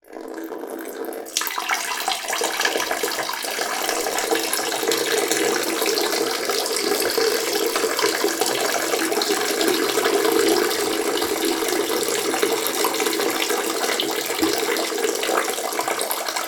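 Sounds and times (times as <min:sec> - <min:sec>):
person urinating into toilet: 0:00.0 - 0:16.4.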